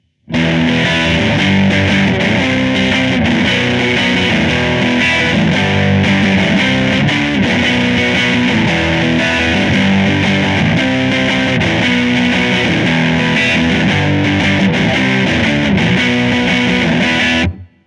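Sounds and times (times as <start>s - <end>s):
crunch tone from Line 6 Spider Valve amplifier: 0.0s - 17.8s.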